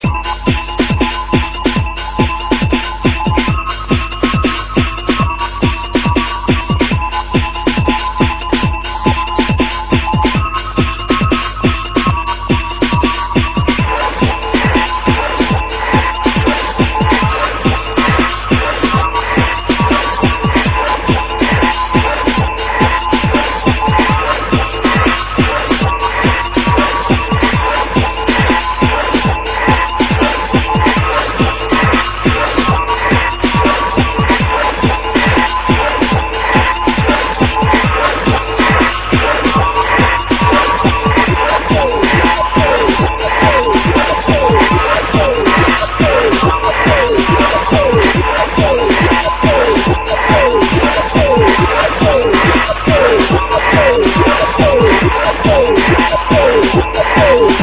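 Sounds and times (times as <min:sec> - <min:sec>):
dj sample: 0:00.0 - 0:57.6.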